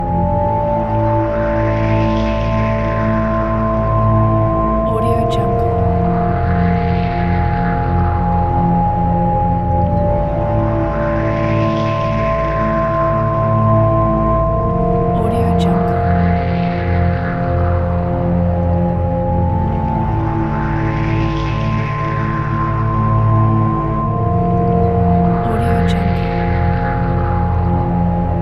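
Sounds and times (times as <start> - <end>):
eerie ambient sci-fi music loop: 0.0 - 28.4.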